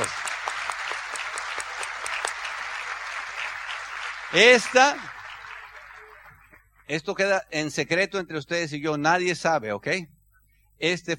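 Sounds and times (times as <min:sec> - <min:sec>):
crowd applauding at a business event: 0:00.0 - 0:06.6
speech: 0:04.3 - 0:05.1, 0:06.9 - 0:10.1, 0:10.8 - 0:11.1.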